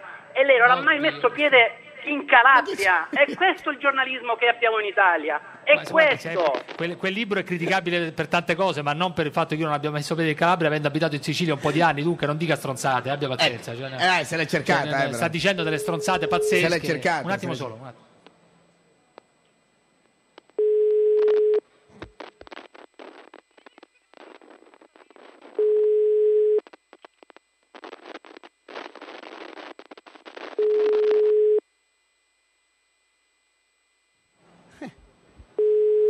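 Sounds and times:
speech: 0.4 - 18.1
harsh crackling phone line noise: 3.0 - 8.2, 18.2 - 34.5
mobile phone call ringing tone beeps: 15.7 - 16.7, 20.6 - 21.6, 25.6 - 26.6, 30.6 - 31.6, 35.6 - 36.0.

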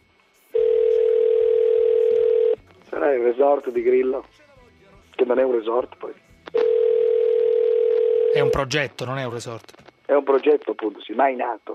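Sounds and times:
international telephone ringing tone from a call abroad: 0.6 - 2.6, 6.6 - 8.6
speech: 3.3 - 4.5, 5.2 - 6.6, 8.4 - 11.7.

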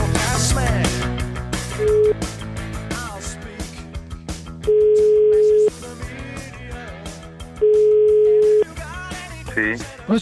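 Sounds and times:
busy music: 0.0 - 10.2
phone line ringback tone: 1.8 - 2.2, 4.6 - 5.8, 7.6 - 8.7
speech: 9.8 - 10.2.

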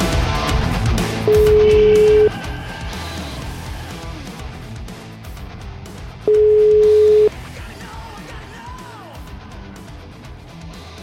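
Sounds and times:
music: 0.0 - 11.0
Italian telephone ringback tone of an outgoing call: 1.3 - 2.3, 6.3 - 7.3.

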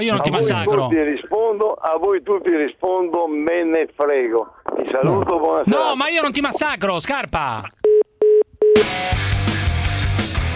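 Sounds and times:
speech: 0.0 - 7.9, 8.8 - 9.5
telephone beeps after a caller hangs up: 7.9 - 8.8
music: 8.8 - 10.5.

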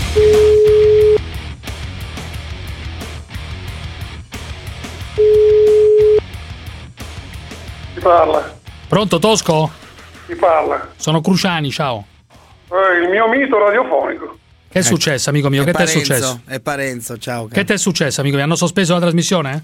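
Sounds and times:
telephone tone beeps while a call is placed: 0.2 - 1.2, 5.2 - 6.2
speech: 8.1 - 12.1, 12.7 - 19.6.

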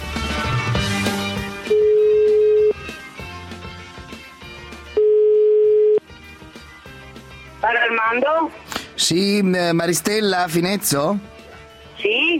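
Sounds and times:
music: 0.0 - 12.3
ringing tone of an outgoing telephone call: 1.6 - 2.8, 5.0 - 6.0
speech: 8.4 - 11.3, 12.0 - 12.3.

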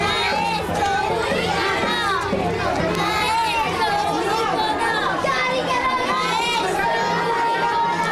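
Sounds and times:
busy hubbub of many kids: 0.0 - 8.1
crowd of children chanting a protest line: 0.0 - 8.1.

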